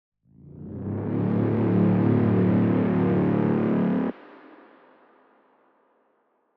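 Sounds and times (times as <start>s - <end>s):
cinematic braaam tension sound: 0.4s - 4.3s.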